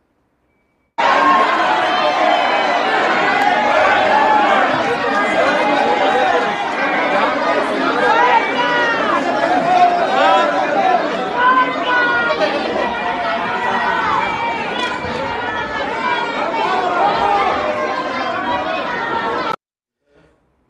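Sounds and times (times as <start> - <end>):
crowd of legislators shouting and chattering in a large chamber: 1.0 - 19.6.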